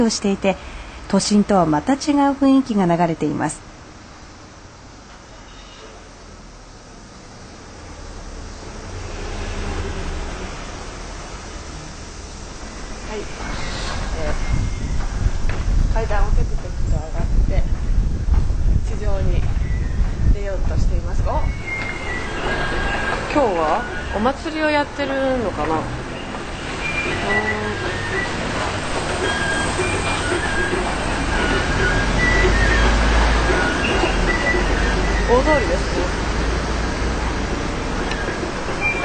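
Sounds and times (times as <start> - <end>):
speech: 0.0 - 3.7
steady roar of traffic along a broad four-lane city street at an intersection: 0.0 - 39.0
high wavering brake squeals: 5.4 - 6.2, 8.5 - 15.4, 21.2 - 39.0.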